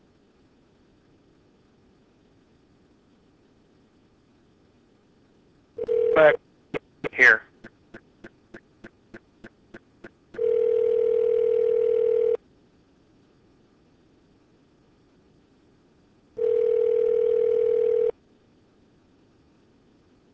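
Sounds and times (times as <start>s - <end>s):
long steady telephone tones: 5.8s - 6.4s, 10.4s - 12.4s, 16.4s - 18.2s
speech: 6.2s - 6.4s.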